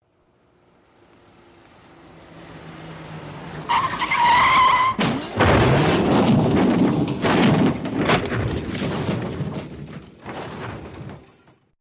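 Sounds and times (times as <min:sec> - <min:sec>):
vehicle collision: 0:03.6 - 0:11.7.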